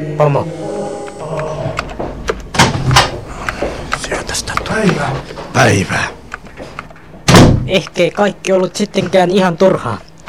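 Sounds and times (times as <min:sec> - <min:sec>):
faint electrical hum: 0:00.0 - 0:10.2
speech: 0:00.1 - 0:00.6, 0:04.7 - 0:06.2, 0:07.7 - 0:10.1
door thudding as it swings shut: 0:07.2 - 0:07.7.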